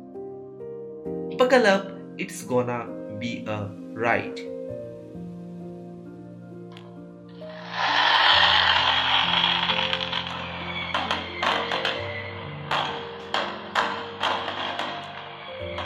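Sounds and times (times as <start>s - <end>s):
speech: 1.0s - 4.6s
low sustained musical drone: 6.7s - 15.8s
distant fireworks crackling and popping: 7.4s - 15.8s
steady hissing roar: 7.4s - 15.8s.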